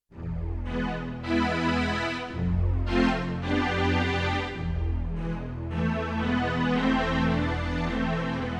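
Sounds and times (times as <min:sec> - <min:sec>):
detuned string set on a Yamaha TX16W sampler: 0:00.2 - 0:08.4.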